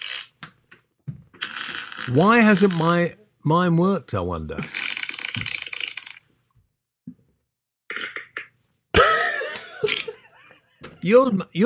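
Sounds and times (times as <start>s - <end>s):
fart noises: 0.0s - 0.4s, 1.3s - 2.8s, 4.6s - 6.3s, 7.9s - 8.6s
speech: 2.1s - 4.8s, 11.0s - 11.6s.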